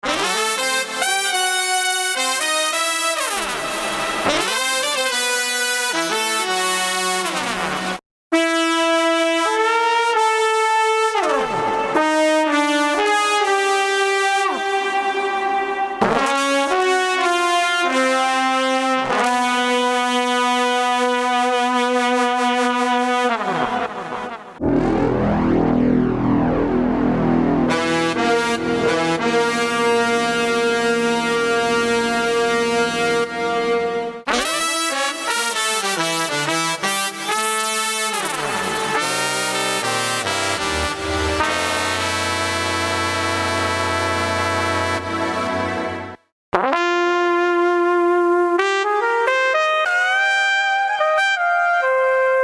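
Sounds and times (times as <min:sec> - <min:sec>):
trombone: 0:00.0 - 0:15.3, 0:16.0 - 0:52.3
flugelhorn: 0:00.0 - 0:52.4
trumpet: 0:00.0 - 0:52.4.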